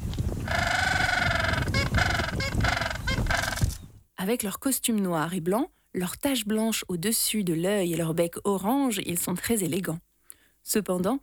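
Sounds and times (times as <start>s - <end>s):
Gentoo penguin giving a donkey-like braying call: 0.4s - 3.7s
speech: 4.2s - 11.2s.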